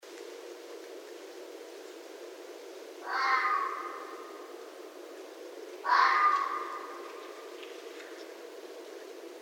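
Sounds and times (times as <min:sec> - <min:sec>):
continuous low hiss: 0:00.0 - 0:09.4
red fox giving rasping, drawn-out calls: 0:03.0 - 0:04.5, 0:05.8 - 0:07.4.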